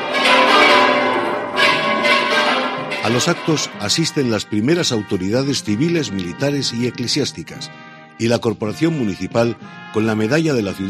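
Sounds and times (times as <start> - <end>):
church bells of a monastery ringing on a festival morning: 0.0 - 7.5
speech: 3.0 - 10.8.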